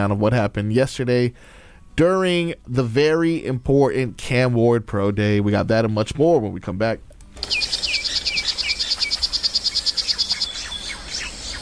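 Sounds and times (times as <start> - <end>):
speech: 0.0 - 7.6
faint chirps: 7.4 - 11.6
poison dart frog rapid high-pitched buzzing trill: 7.4 - 11.6.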